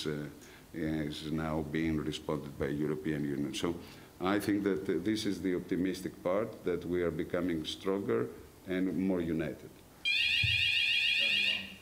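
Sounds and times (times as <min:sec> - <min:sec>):
speech: 0:00.0 - 0:10.6
fire alarm blaring with a high-pitched electronic tone: 0:10.0 - 0:11.8.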